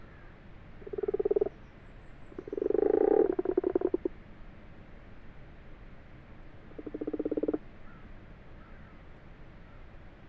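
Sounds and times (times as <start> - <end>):
wild common frog croaking in an abandoned water-filled wash house in France: 0.8 - 1.6, 2.4 - 4.1, 6.7 - 7.6.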